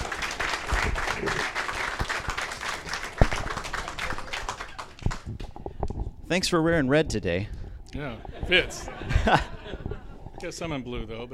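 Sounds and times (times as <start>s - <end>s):
audience applause: 0.0s - 5.4s
speech: 6.3s - 9.5s, 10.4s - 11.3s
laughter: 8.0s - 10.2s.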